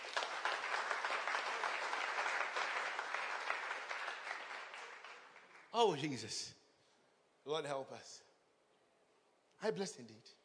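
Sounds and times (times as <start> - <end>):
audience applauding: 0.0 - 6.1
speech: 5.8 - 6.6, 7.4 - 8.3, 9.6 - 10.4.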